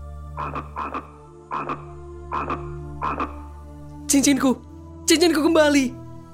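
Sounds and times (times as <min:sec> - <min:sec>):
frog croaking: 0:00.2 - 0:03.7
speech: 0:00.4 - 0:03.4, 0:04.1 - 0:06.0.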